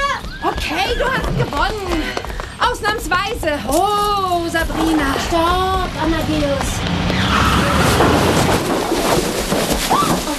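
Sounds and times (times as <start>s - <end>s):
speech: 0.6s - 2.1s, 2.7s - 7.9s
car crashing into a hay wagon in a farmyard, hay sliding onto the car: 7.5s - 10.3s.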